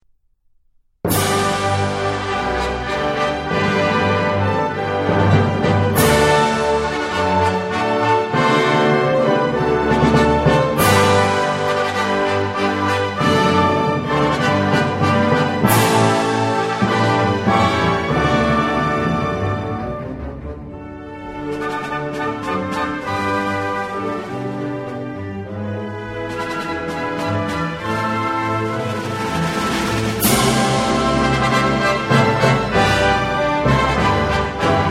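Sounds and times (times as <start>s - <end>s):
instrumental national anthem: 1.1s - 34.8s.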